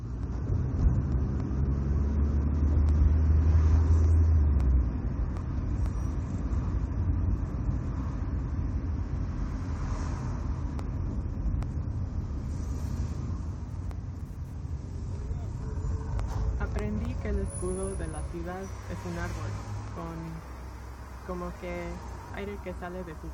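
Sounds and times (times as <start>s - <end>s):
car engine driving and slowing: 0.0s - 23.3s
car road rumble: 0.0s - 23.3s
speech: 22.4s - 23.3s.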